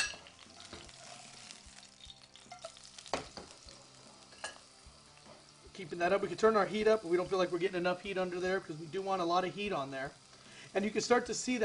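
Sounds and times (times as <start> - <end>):
spitting oil popping in a pan: 0.0 - 4.6
tuna searing in hot oil in a pan: 0.0 - 11.6
speech: 5.8 - 11.6.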